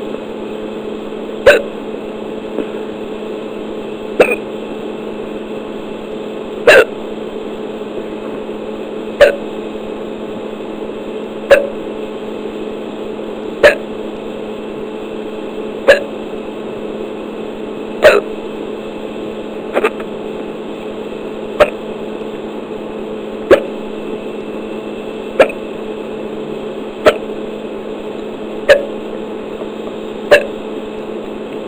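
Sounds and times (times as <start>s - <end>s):
low hum: 0.0s - 31.6s
hiccups: 1.4s - 1.8s, 4.2s - 4.6s, 6.6s - 7.0s, 9.2s - 9.6s, 11.5s - 11.8s, 13.6s - 14.0s, 15.8s - 16.2s, 18.0s - 18.4s, 19.7s - 20.1s, 21.6s - 21.9s, 23.5s - 23.8s, 25.4s - 25.8s, 27.0s - 27.4s, 28.6s - 29.0s, 30.3s - 30.7s.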